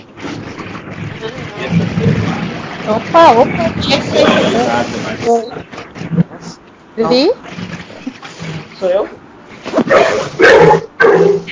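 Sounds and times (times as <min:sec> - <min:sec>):
speech: 0:02.9 - 0:06.3, 0:07.0 - 0:07.5, 0:08.8 - 0:09.2
dog barking loudly on an online call: 0:09.8 - 0:11.5.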